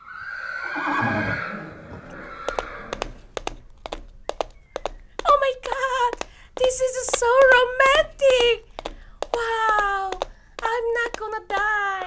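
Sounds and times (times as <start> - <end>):
brief squealing: 0.0 - 2.9
horse neighing: 0.0 - 3.3
hooves clip-clopping: 1.1 - 12.0.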